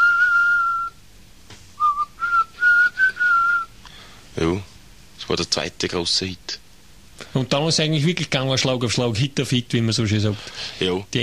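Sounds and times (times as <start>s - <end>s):
melodic human whistling in an English pop song: 0.0s - 1.0s, 1.8s - 3.7s
speech: 5.3s - 6.6s, 7.3s - 11.2s.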